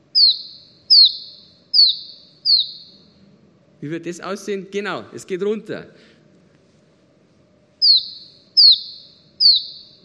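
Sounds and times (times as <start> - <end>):
Iberian chiffchaff singing descending whistled notes: 0.0 - 3.0, 7.8 - 10.0
speech: 3.8 - 6.1.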